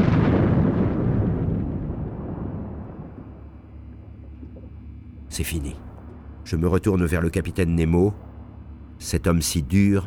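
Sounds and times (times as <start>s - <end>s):
deep explosion of a sinking ship with rumbling roar: 0.0s - 4.7s
speech: 5.4s - 5.9s, 6.5s - 8.3s, 9.0s - 10.0s.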